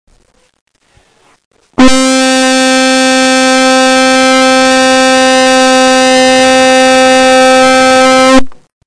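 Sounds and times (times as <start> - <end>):
flugelhorn playing the note A: 1.8 - 8.5.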